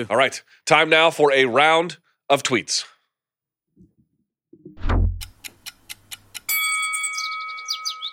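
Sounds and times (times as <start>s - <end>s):
speech: 0.0s - 2.9s
low whoosh: 4.8s - 5.3s
five-minute clock timer ticking: 5.2s - 6.6s
bright sustained ringing chime: 6.5s - 8.1s.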